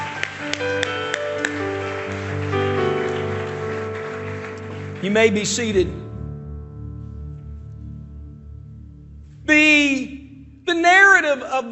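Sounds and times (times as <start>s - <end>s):
audience clapping hands in unison: 0.0s - 6.0s
sustained church music: 0.0s - 11.7s
speech: 5.0s - 6.0s.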